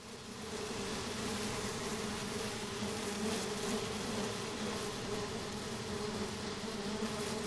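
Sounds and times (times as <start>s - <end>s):
African tsetse flies buzzing: 0.0s - 7.4s.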